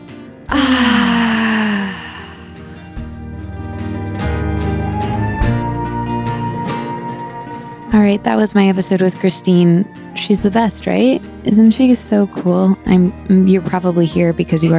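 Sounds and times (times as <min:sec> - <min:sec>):
soft instrumental music: 0:00.0 - 0:14.7
breathy yawn: 0:00.5 - 0:02.9
speech: 0:08.0 - 0:14.7.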